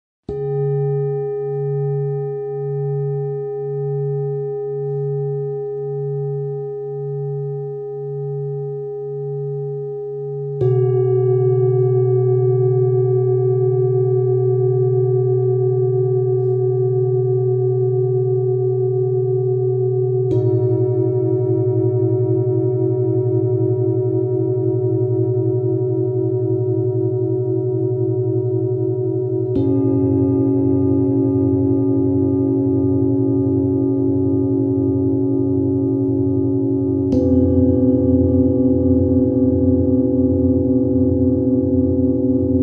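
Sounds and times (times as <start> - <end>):
singing bowls: 0.3 - 42.6.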